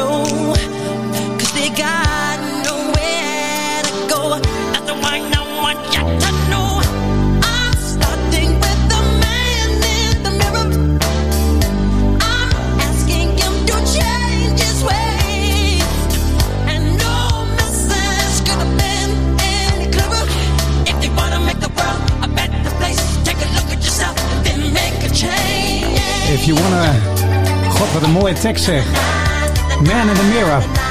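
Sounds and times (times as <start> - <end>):
pop song with sung vocals, bass and drums: 0.0 - 30.8
speech: 28.4 - 29.2, 29.8 - 30.8.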